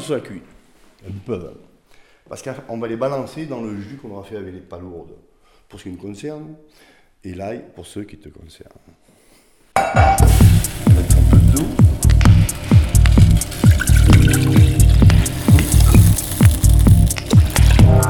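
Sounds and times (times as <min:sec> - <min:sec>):
speech: 0:00.0 - 0:01.7, 0:02.3 - 0:09.1, 0:09.8 - 0:11.8
water poured into a pot for cooking pasta: 0:12.5 - 0:17.9.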